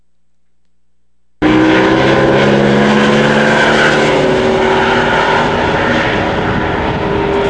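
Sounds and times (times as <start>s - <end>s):
racing cars: 1.4s - 7.4s.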